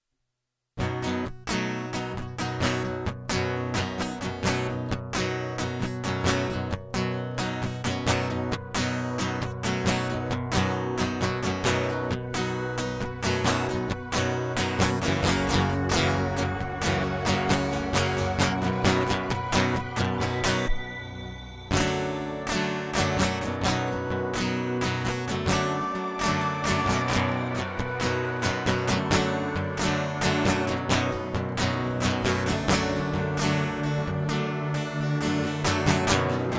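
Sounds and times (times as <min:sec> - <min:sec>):
instrumental music: 0:00.8 - 0:36.5.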